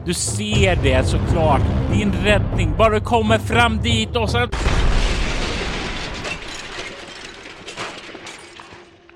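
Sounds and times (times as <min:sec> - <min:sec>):
speech: 0:00.0 - 0:04.8
ceiling collapsing with heavy rumbling crash: 0:04.6 - 0:09.1
falling debris clattering: 0:04.6 - 0:09.1.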